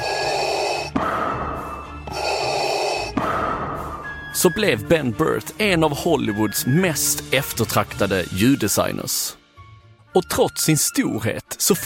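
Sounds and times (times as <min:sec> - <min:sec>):
mechanical respirator breathing film sound effect of a masked character: 0:00.0 - 0:04.2
speech: 0:04.4 - 0:09.4, 0:10.1 - 0:11.8.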